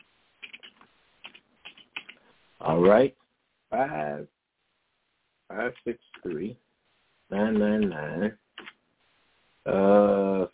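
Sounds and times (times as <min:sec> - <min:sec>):
typing on a computer keyboard: 0:00.4 - 0:02.2, 0:08.6 - 0:08.8
speech: 0:02.6 - 0:04.4, 0:05.5 - 0:06.6, 0:07.3 - 0:08.4, 0:09.6 - 0:10.5.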